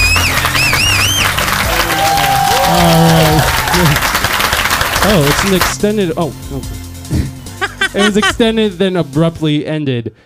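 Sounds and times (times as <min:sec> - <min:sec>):
canned crowd cheering sound effect with applause, whistles and voices: 0:00.0 - 0:05.3
speech: 0:05.1 - 0:06.8, 0:07.9 - 0:10.2
laughter: 0:07.6 - 0:08.6.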